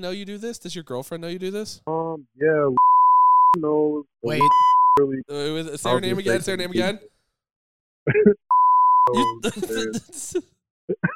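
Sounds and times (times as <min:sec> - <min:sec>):
speech: 0:00.0 - 0:02.9, 0:03.5 - 0:07.1, 0:08.0 - 0:08.4, 0:09.0 - 0:11.0
high-pitched censor beep over a spoken word: 0:04.3 - 0:05.0, 0:08.5 - 0:09.4
laughter: 0:09.1 - 0:10.4.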